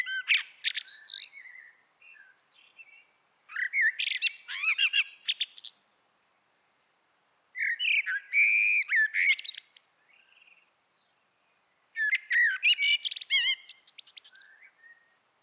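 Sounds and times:
common blackbird (Turdus merula) song: 0.0 - 5.8, 7.6 - 15.4.

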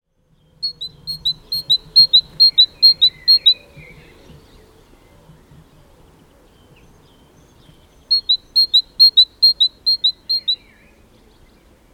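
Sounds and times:
great tit Parus major singing rapid two-note pairs: 0.6 - 4.1, 8.0 - 10.6.

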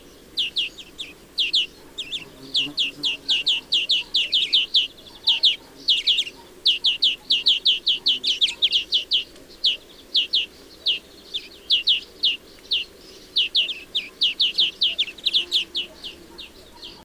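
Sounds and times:
European greenfinch Chloris chloris chirping: 0.0 - 17.0.

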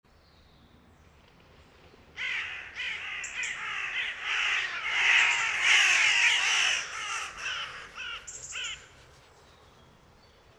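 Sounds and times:
Corvus corone carrion crow cawing harshly: 2.2 - 8.9.

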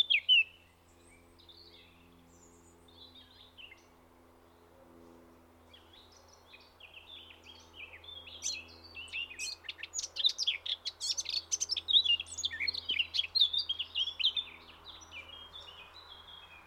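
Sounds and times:
Eurasian blackcap Sylvia atricapilla warbling song: 0.0 - 0.6, 5.8 - 16.6.

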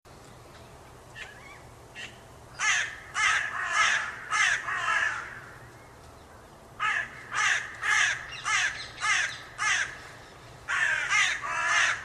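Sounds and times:
Carrion crow Corvus corone cawing: 2.0 - 5.6, 6.8 - 12.0.

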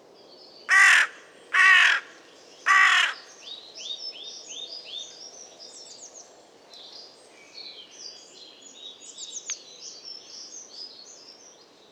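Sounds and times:
Carrion crow (Corvus corone) giving harsh hoarse caws: 0.7 - 3.3.

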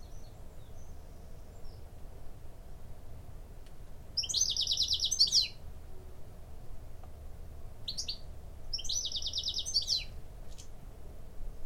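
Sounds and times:
steady low background rumble: 0.0 - 11.6
European goldfinch Carduelis carduelis tinkling buzzy twittering calls: 4.2 - 5.6, 7.9 - 10.7.

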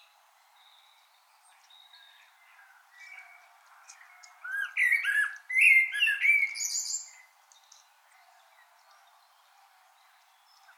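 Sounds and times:
common blackbird Turdus merula giving a fluted whistle and high squeak: 4.5 - 7.1.

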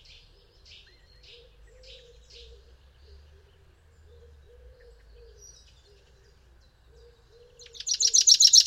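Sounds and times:
common chaffinch Fringilla coelebs singing: 0.0 - 8.6.

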